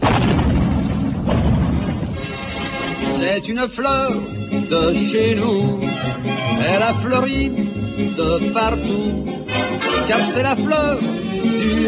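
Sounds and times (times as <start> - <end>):
heavy cannon fire barrage: 0.0 - 4.4
speech: 3.3 - 11.8.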